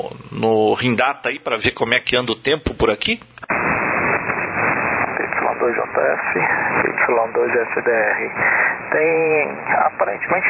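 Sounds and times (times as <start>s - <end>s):
speech: 0.0s - 3.6s, 5.7s - 10.4s
radio static during showery rainy weather: 3.4s - 10.4s.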